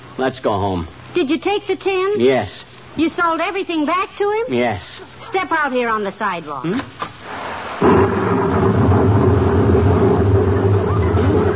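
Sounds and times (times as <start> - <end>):
speech: 0.2 - 7.0
heavy rain downpour: 7.2 - 11.5
deep rolling rumble of thunder: 7.8 - 11.5.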